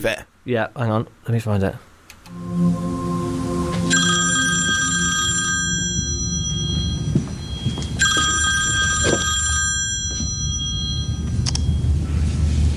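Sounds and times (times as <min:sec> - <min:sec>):
speech: 0:00.0 - 0:02.8
low hum: 0:00.0 - 0:12.7
telephone ringing with bright trilling bell tones: 0:03.9 - 0:11.9.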